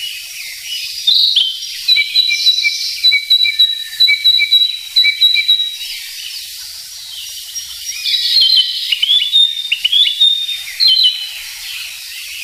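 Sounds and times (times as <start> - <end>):
Narcissus flycatcher singing varied whistled phrases: 0.0 - 12.4.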